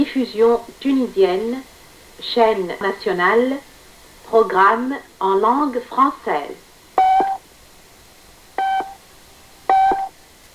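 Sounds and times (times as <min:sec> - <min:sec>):
quiet hiss: 0:00.0 - 0:10.5
speech: 0:00.1 - 0:03.7, 0:04.3 - 0:06.6
radio time signal beeps: 0:07.0 - 0:07.4, 0:08.6 - 0:09.0, 0:09.7 - 0:10.1.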